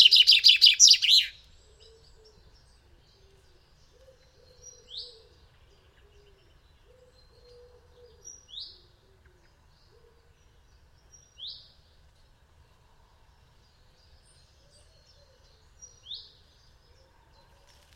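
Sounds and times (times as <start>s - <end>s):
common chaffinch trilling: 0.0s - 1.4s.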